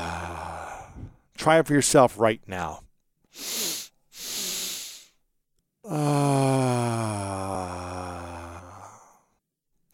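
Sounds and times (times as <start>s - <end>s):
speech: 1.4s - 2.8s, 3.4s - 3.6s, 5.9s - 7.2s
quick airy inhales through the nose: 3.3s - 5.2s.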